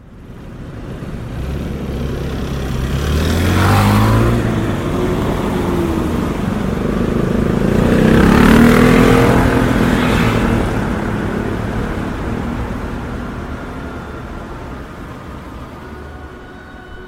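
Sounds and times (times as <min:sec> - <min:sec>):
motorcycle engine revving while ridden on a clear sunny cold spring day: 0:01.2 - 0:14.6.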